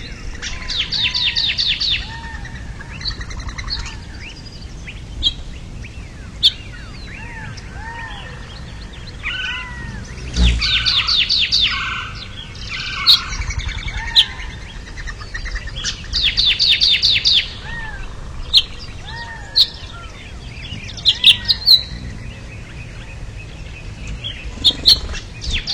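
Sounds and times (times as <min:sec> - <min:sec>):
flock of birds calling in chorus: 0:00.0 - 0:25.7.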